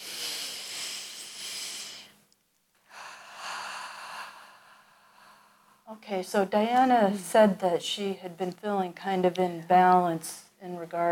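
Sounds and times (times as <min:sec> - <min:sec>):
deep breath: 0:00.0 - 0:02.2, 0:02.8 - 0:05.9
speech: 0:05.9 - 0:11.1.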